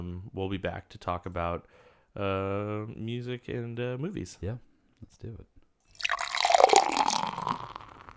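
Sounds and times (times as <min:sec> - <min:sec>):
speech: 0:00.2 - 0:06.1
pale ale pouring into a glass as a refill: 0:05.9 - 0:08.1.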